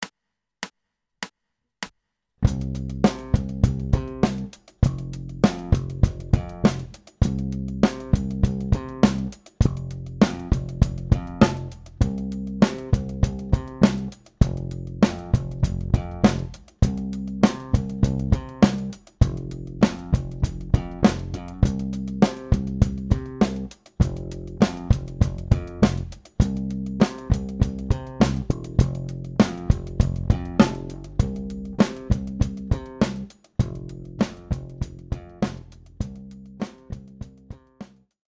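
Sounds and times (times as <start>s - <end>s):
four-string bass slap groove: 2.4s - 38.0s.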